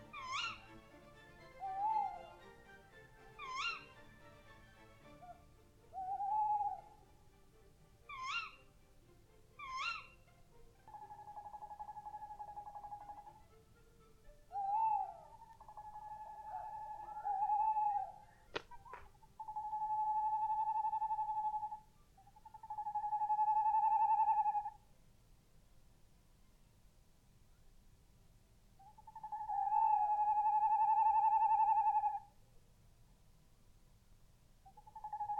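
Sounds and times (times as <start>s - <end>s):
tawny owl hooting at night: 0.0s - 2.5s, 3.4s - 4.1s, 5.1s - 7.0s, 8.1s - 8.7s, 9.6s - 13.4s, 14.5s - 24.8s, 28.8s - 32.4s, 34.6s - 35.3s.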